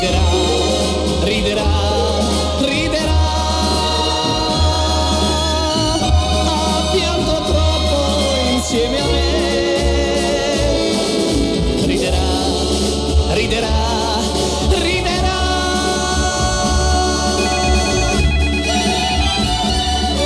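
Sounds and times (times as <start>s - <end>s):
loud steady music: 0.0s - 20.2s
telephone ringing with an incoming call: 17.2s - 19.4s.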